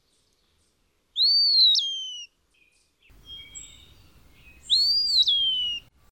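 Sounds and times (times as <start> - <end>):
Eastern Wood Pewee song: 0.0 - 6.0.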